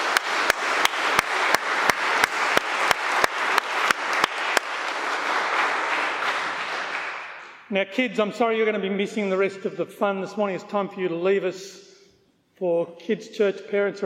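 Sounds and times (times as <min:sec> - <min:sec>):
church audience applauding: 0:00.0 - 0:07.6
one person clapping sharply: 0:00.0 - 0:07.7
speech: 0:07.7 - 0:11.8, 0:12.6 - 0:14.0.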